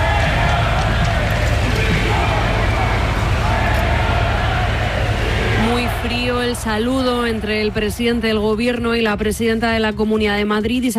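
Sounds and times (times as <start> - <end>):
footsteps and bustle: 0.0 - 7.9
large outdoor crowd booing and shouting insults: 0.0 - 8.8
speech: 6.6 - 10.9.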